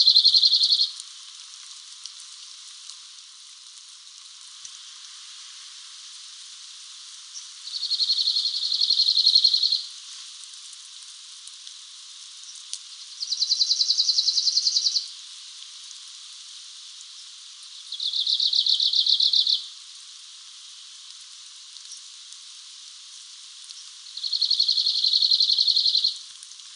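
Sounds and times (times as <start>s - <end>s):
Arctic warbler Phylloscopus borealis calling: 0.0s - 0.9s, 7.6s - 9.9s, 13.1s - 15.1s, 17.8s - 19.7s, 24.2s - 26.2s.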